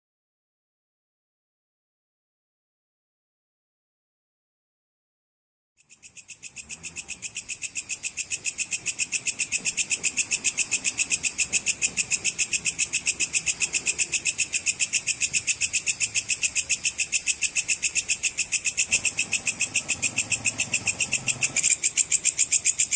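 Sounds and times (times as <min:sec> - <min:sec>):
small belalang kecek grasshopper chirping: 0:05.8 - 0:22.9.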